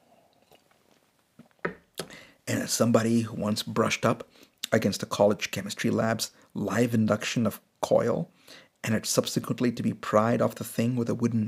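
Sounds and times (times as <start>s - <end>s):
faint quiet mouth noises: 1.9s - 2.8s
speech: 2.5s - 11.4s.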